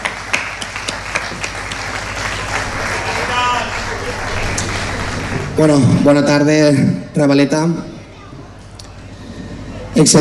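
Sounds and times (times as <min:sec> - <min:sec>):
crowd applauding for a commission president being introduced: 0:00.0 - 0:06.5
speech: 0:05.6 - 0:07.9, 0:10.0 - 0:10.1.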